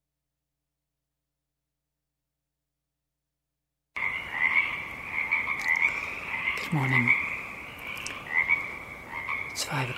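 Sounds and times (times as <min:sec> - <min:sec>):
chorus of frogs trilling and croaking across a marsh: 0:04.0 - 0:09.9.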